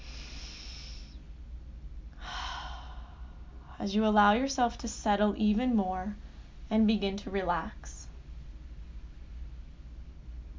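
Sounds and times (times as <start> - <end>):
slow deep breath in and out during a meditation exercise: 0.0 - 1.2, 2.2 - 3.8
speech: 3.8 - 8.0.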